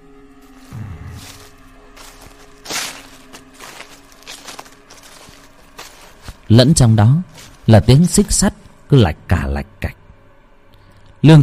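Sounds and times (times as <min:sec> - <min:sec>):
low steady hum: 0:00.0 - 0:11.4
shuffling footsteps dragging along the ground outside: 0:00.3 - 0:08.8
speech: 0:06.5 - 0:10.0, 0:11.2 - 0:11.4.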